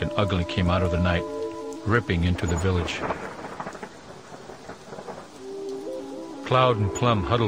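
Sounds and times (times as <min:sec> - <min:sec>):
dense thunderstorm rain hissing down: 0:00.0 - 0:07.4
thunder rumbling low: 0:00.0 - 0:07.4
speech: 0:00.1 - 0:03.3, 0:06.5 - 0:07.4.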